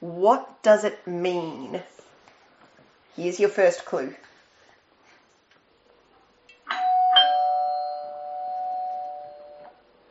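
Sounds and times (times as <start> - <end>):
speech: 0.1 - 2.0, 3.2 - 4.3
two-tone electronic doorbell chime: 6.7 - 9.8.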